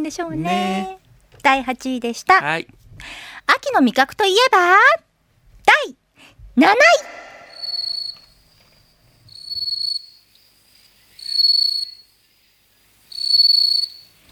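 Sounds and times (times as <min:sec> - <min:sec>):
speech: 0:00.0 - 0:05.1, 0:05.7 - 0:06.0, 0:06.6 - 0:07.3
bell crickets and pine crickets chirping: 0:07.0 - 0:14.3.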